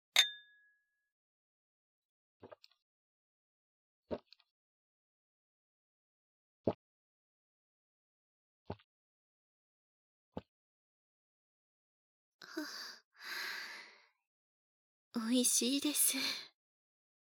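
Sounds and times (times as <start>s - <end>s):
beer glasses clinking in a toast: 0.2s - 0.4s
breathy sigh: 12.4s - 14.0s
speech: 15.2s - 16.5s.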